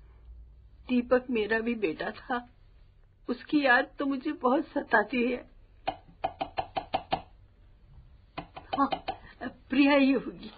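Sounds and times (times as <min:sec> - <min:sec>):
speech: 0:00.9 - 0:02.6, 0:03.3 - 0:06.0, 0:08.8 - 0:10.5
sharp knocks on a door: 0:05.9 - 0:07.3.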